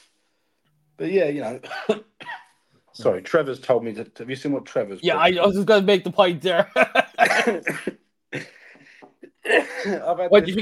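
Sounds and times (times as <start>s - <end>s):
speech: 1.0s - 2.4s, 3.0s - 8.5s, 9.4s - 10.6s
person coughing: 1.6s - 2.6s, 7.2s - 10.1s.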